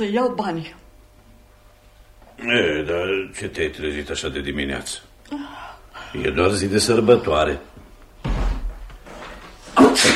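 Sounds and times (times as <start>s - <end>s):
speech: 0.0s - 0.8s, 2.4s - 7.8s
thumps: 7.8s - 9.3s
person sneezing at the front door: 9.7s - 10.1s.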